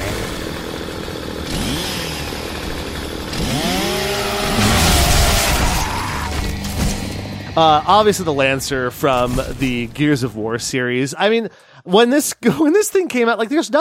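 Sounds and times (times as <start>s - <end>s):
chainsaw bayonet engine idling and revving: 0.0s - 10.0s
speech: 7.6s - 13.7s.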